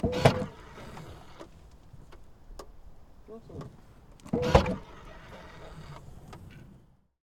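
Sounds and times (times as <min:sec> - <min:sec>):
Porsche Cayenne 4.8 V8 trunk opening: 0:00.0 - 0:02.4, 0:03.4 - 0:06.9.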